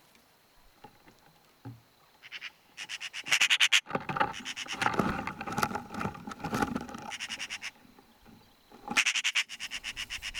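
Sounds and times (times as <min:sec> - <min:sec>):
Eurasian magpie Pica pica harsh rapid rattling chatter: 0:02.2 - 0:05.3, 0:06.8 - 0:07.9, 0:08.8 - 0:10.3
rustling: 0:03.8 - 0:10.3.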